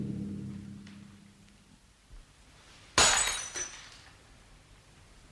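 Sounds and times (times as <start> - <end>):
drinking glass dropping and shattering: 2.9 - 4.1
smaller clatter of glass: 3.0 - 4.1.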